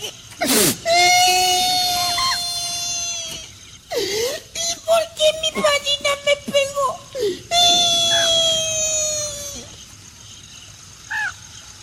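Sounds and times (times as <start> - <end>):
child crying and sobbing: 0.0 - 9.8.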